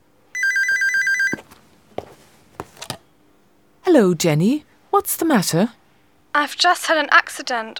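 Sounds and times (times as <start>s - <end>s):
telephone ringing with an electronic trill: 0.4s - 1.6s
speech: 3.9s - 5.8s, 6.4s - 7.7s.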